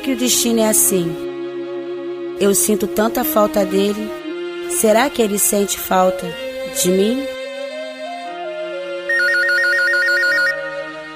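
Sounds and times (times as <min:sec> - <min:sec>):
speech: 0:00.1 - 0:01.3, 0:02.4 - 0:07.4
phone electronic ringtone trilling with an incoming call: 0:09.1 - 0:10.9.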